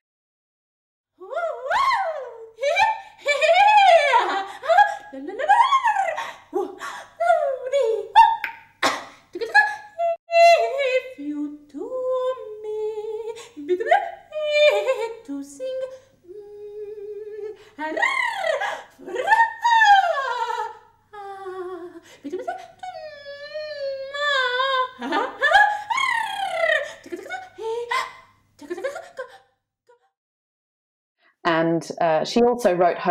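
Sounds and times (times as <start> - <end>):
unaccompanied contemporary vocal performance with extended techniques: 1.2 - 30.2, 31.5 - 33.0
speech: 31.9 - 33.0.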